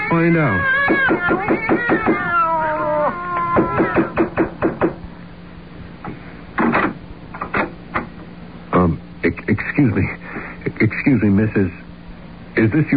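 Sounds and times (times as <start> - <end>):
several cats meowing and yowling: 0.0 - 4.6
speech: 0.2 - 2.4, 3.6 - 5.1, 9.2 - 10.2, 10.8 - 11.8, 12.6 - 12.9
sharp knocks and thumps: 0.8 - 2.4, 3.4 - 5.0, 6.0 - 8.3.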